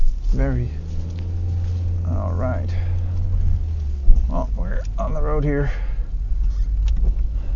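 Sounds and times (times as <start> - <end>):
tire scuffing: 0.0 - 4.4
car tires slipping on a snowy road: 0.0 - 7.5
heavy low vehicle rumble: 0.0 - 7.5
speech: 0.4 - 0.8, 2.4 - 2.9, 4.3 - 5.9.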